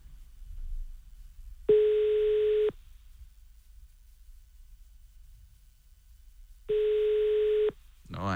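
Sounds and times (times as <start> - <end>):
quiet low hum: 0.0 - 8.3
electronic phone ringback tone: 1.7 - 2.7, 6.7 - 7.8.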